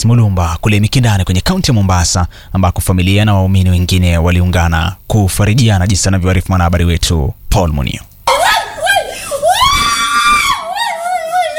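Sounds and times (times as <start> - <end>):
speech: 0.0 - 8.1
mourners wailing in grief at a Catholic church in Mikindani, Mombasa: 8.3 - 11.5.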